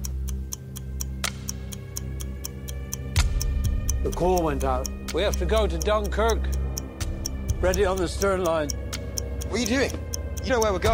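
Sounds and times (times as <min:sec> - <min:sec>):
clock tick-tock in a film score: 0:00.0 - 0:10.9
low sustained droning film score: 0:00.0 - 0:10.9
speech: 0:04.0 - 0:06.6, 0:07.6 - 0:08.9, 0:09.5 - 0:10.9.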